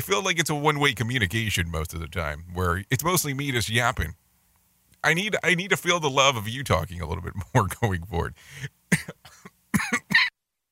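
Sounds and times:
speech: 0:00.0 - 0:04.2, 0:05.0 - 0:10.1
person coughing into a microphone: 0:08.9 - 0:10.3.

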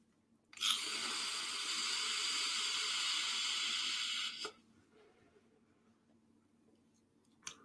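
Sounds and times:
vape device set to 30 watts firing during an inhale: 0:00.8 - 0:04.6.

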